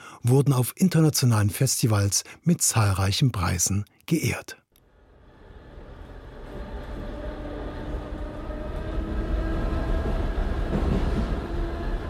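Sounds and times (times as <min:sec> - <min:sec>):
speech: 0:00.2 - 0:04.6
S-Bahn commuter train carriage in motion rumbling: 0:05.1 - 0:12.0.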